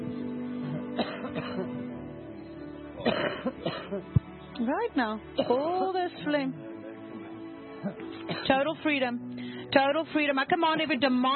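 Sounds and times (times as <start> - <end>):
woman coughing during a healing prayer: 1.0 - 1.7, 3.0 - 4.0, 8.3 - 8.6
speech: 3.0 - 6.7, 7.8 - 11.3.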